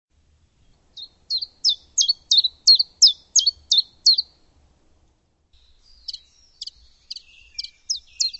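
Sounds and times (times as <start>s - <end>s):
bird calling: 1.0s - 4.4s, 5.6s - 8.3s.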